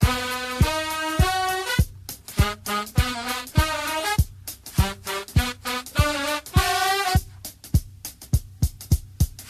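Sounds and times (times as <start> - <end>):
trumpet music: 0.0 - 7.6.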